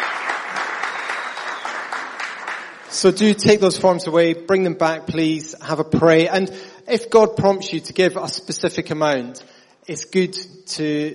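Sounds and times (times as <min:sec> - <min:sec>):
audience applause at a church gathering: 0:00.0 - 0:03.0
speech: 0:02.9 - 0:11.1.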